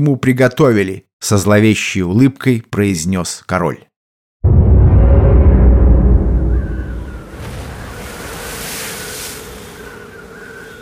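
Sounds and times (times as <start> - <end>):
speech: 0.0 - 3.9
wind howling around a sailing ship with paddle wheels: 4.5 - 10.8
water rushing around a sailing ship with paddle wheels: 7.3 - 10.2.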